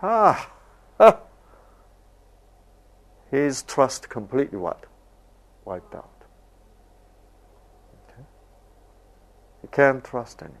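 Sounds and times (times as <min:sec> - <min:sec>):
speech: 0:00.0 - 0:01.2, 0:03.3 - 0:04.9, 0:05.7 - 0:06.1, 0:09.7 - 0:10.5
person mimicking a dog's bark: 0:05.7 - 0:06.2.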